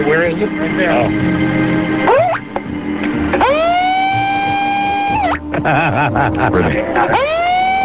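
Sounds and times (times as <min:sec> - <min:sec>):
speech: 0:00.0 - 0:02.2, 0:05.6 - 0:07.5
loud electronic bullhorn siren wailing: 0:00.2 - 0:05.5, 0:07.0 - 0:07.8
laughter: 0:05.5 - 0:07.4.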